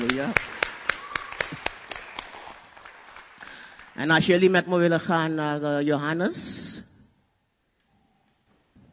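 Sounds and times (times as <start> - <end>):
audience applause: 0.0 - 4.1
speech: 0.2 - 0.5, 4.0 - 6.7.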